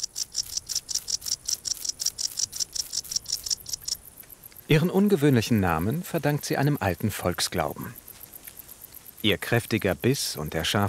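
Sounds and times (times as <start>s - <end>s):
wart-biter bush cricket stridulating by rubbing wings on the Baltic coast: 0.0s - 10.8s
speech: 4.7s - 8.0s, 9.2s - 10.8s.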